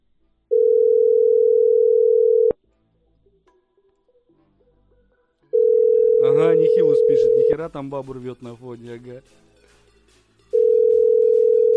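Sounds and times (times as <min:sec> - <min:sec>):
telephone ringback tone on an outgoing call: 0:00.5 - 0:02.6, 0:05.6 - 0:07.6, 0:10.6 - 0:11.7
speech: 0:07.6 - 0:09.4.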